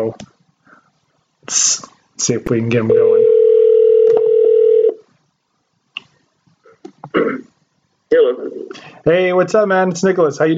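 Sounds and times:
speech: 0.0s - 0.3s, 1.5s - 3.1s, 8.1s - 10.5s
steady electronic telephone tone: 2.9s - 5.0s.

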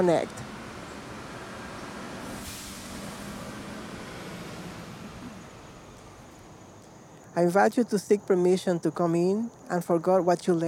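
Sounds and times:
speech: 0.0s - 0.4s, 7.4s - 10.6s
vehicle passing: 0.0s - 7.2s
street traffic rumbling with engines droning: 0.0s - 10.6s.

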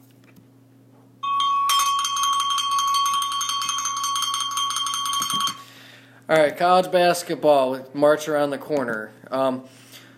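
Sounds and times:
bell rung for basketball score update: 1.2s - 5.7s
speech: 6.3s - 9.8s.

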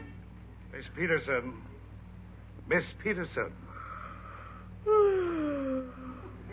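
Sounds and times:
speech: 0.8s - 1.7s, 2.7s - 3.7s
woman yawning: 4.9s - 6.3s.

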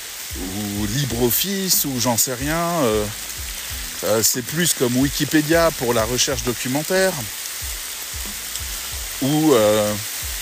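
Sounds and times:
heavy rain pouring down: 0.0s - 10.4s
person's voice trailing off: 0.3s - 7.4s, 9.0s - 10.2s
speech: 0.3s - 7.8s, 9.2s - 10.1s.

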